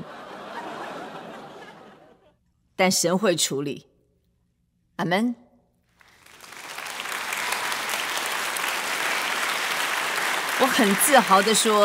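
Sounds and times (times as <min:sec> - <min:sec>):
laughter: 0:00.0 - 0:02.4
speech: 0:02.8 - 0:03.9, 0:05.0 - 0:05.4, 0:10.7 - 0:11.8
audience applause: 0:06.0 - 0:11.8.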